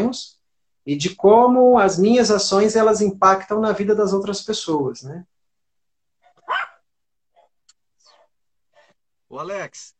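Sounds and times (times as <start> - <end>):
speech: 0.1 - 5.3, 9.3 - 9.9
dog barking: 6.2 - 7.5.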